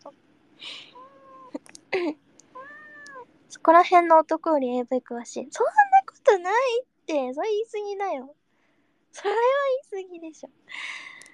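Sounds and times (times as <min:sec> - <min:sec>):
cat meowing while climbing onto a person: 0:00.6 - 0:01.6, 0:02.6 - 0:03.2
speech: 0:02.0 - 0:02.2, 0:03.6 - 0:08.4, 0:09.2 - 0:10.9.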